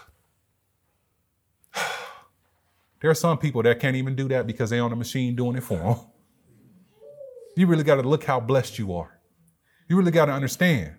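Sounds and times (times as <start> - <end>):
church congregation drawing a deep breath in together: 1.7 - 2.3
speech: 3.0 - 6.1, 7.6 - 9.2, 9.9 - 10.9.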